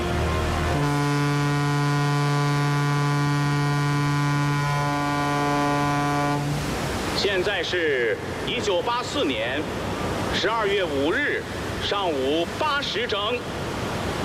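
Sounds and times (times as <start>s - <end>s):
ship horn blast while crossing the equator: 0.0s - 6.7s
speech: 7.3s - 13.6s.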